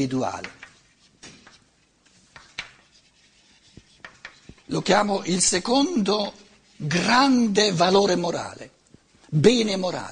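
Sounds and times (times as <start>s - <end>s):
speech: 0.0s - 0.6s, 4.7s - 10.1s
writing on a board: 0.4s - 7.3s.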